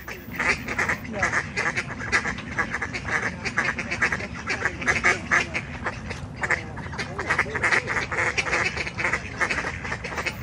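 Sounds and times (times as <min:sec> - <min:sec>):
several ducks quacking at one another: 0:00.0 - 0:10.4.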